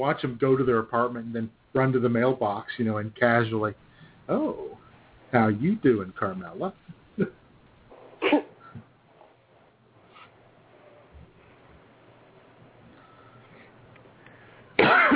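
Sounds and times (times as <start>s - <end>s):
speech: 0.0s - 4.7s, 5.3s - 7.4s
person coughing: 8.2s - 8.7s, 14.8s - 15.1s.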